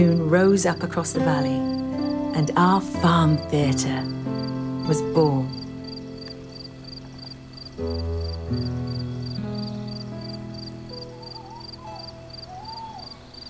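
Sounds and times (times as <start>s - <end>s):
speech: 0.0s - 5.6s, 7.8s - 8.7s
crickets chirping: 0.1s - 13.4s
owl hooting: 9.8s - 13.4s.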